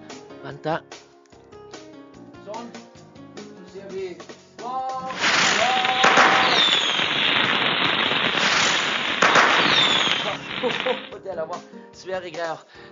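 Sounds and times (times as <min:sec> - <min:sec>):
speech: 0:00.4 - 0:01.0, 0:02.5 - 0:02.9, 0:03.8 - 0:06.1, 0:10.4 - 0:12.9
fireworks exploding: 0:05.0 - 0:11.2
laughter: 0:10.6 - 0:11.2.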